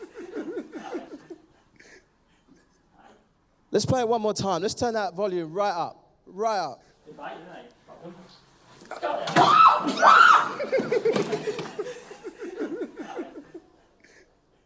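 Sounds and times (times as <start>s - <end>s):
man laughing with shaky breathless yelps: 0.0s - 2.6s, 10.6s - 14.2s
speech: 3.7s - 12.0s
man screaming in fright: 9.4s - 10.5s.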